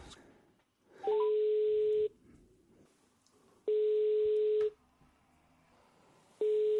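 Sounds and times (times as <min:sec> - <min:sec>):
telephone ringback tone of an outgoing prank call: 0:01.0 - 0:02.1, 0:03.7 - 0:04.6, 0:06.4 - 0:06.7.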